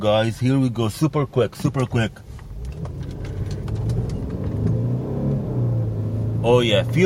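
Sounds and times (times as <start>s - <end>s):
speech: 0.0s - 3.0s, 6.4s - 7.0s
V6 car engine accelerating from standstill: 2.3s - 7.0s.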